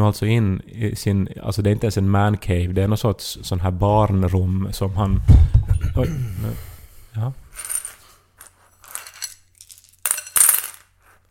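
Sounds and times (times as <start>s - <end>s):
speech: 0.0s - 7.7s
metal dice clattering in a metal bowl: 7.6s - 11.0s.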